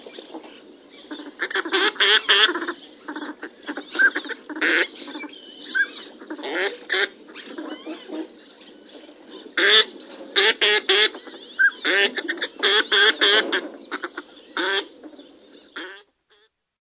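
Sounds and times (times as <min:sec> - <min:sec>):
northern pintail low clucking: 0:00.1 - 0:08.3, 0:09.5 - 0:15.2, 0:15.8 - 0:16.4
northern pintail quacking: 0:01.1 - 0:08.3, 0:09.6 - 0:14.9, 0:15.8 - 0:16.5.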